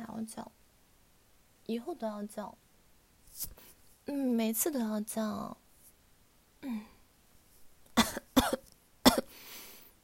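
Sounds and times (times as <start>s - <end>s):
speech: 0.2s - 0.6s, 1.7s - 2.6s, 3.4s - 5.6s, 6.6s - 6.9s
person coughing: 8.0s - 9.3s.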